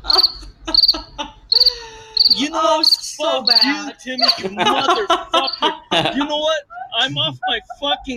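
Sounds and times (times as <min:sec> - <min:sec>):
crickets chirping: 0:00.0 - 0:05.8
laughter: 0:00.0 - 0:08.1
speech: 0:01.6 - 0:08.1.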